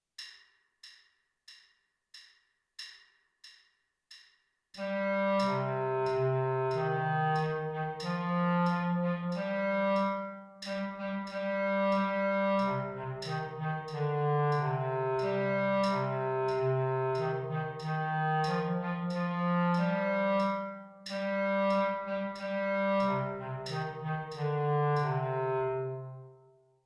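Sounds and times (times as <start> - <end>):
bass clarinet: 4.8 - 26.4.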